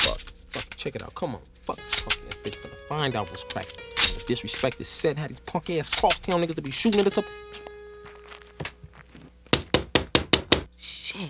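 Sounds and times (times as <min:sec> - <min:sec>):
speech: 0:00.0 - 0:07.7
sharp knocks on a door: 0:09.5 - 0:10.7.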